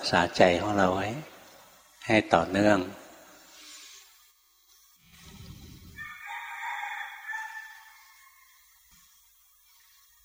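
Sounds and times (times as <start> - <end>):
speech: 0.1 - 1.3, 2.0 - 3.0
junglefowl crowing: 5.9 - 8.6.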